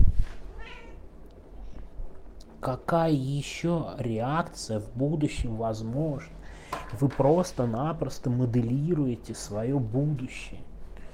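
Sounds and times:
cat meowing: 0.5s - 1.0s
speech: 2.6s - 10.7s.

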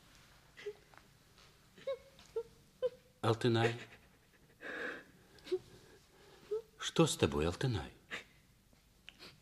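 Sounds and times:
frightened girl crying and whimpering behind a stove: 1.8s - 3.0s, 6.5s - 6.8s
speech: 3.3s - 3.9s, 7.0s - 8.0s.

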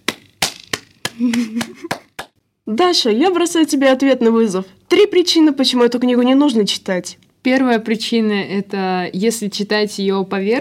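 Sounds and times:
person clapping: 0.0s - 2.4s
speech: 1.2s - 2.1s, 2.7s - 10.5s.

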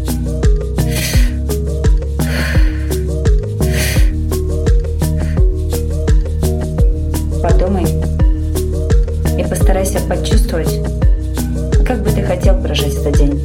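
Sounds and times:
beat-driven musical backing: 0.0s - 13.4s
forceful rhythmic breathing in and out: 0.4s - 7.1s.

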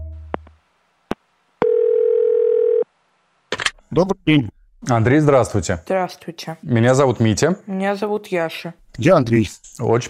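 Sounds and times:
electronic phone beeps as a number is dialed: 1.6s - 2.8s
speech: 4.0s - 10.0s.

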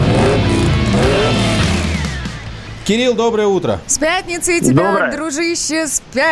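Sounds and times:
car engine revving and accelerating: 0.0s - 2.8s
speech: 2.9s - 6.3s.

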